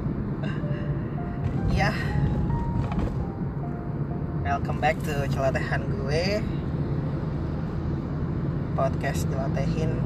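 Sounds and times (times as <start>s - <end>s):
road and engine noise inside a moving car: 0.0s - 10.0s
speech: 1.8s - 2.1s, 4.5s - 6.6s, 8.8s - 10.0s.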